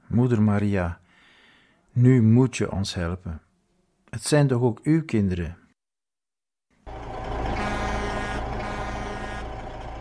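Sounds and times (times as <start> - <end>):
speech: 0.1 - 1.0, 2.0 - 3.5, 4.1 - 5.6
droning mechanical whine: 6.9 - 9.9
heavy truck engine starting and rumbling: 6.9 - 9.9.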